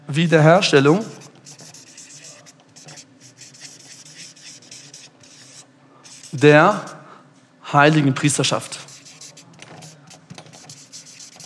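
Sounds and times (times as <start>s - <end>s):
speech: 0.1s - 1.2s, 6.4s - 6.9s, 7.7s - 8.8s
pen or marker handwriting on a surface: 1.0s - 7.0s, 8.8s - 11.4s.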